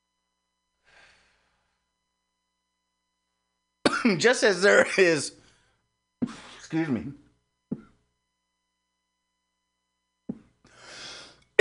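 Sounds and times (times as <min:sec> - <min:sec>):
person coughing: 0:03.9 - 0:04.2, 0:06.2 - 0:06.7
speech: 0:04.1 - 0:05.4, 0:06.3 - 0:07.2.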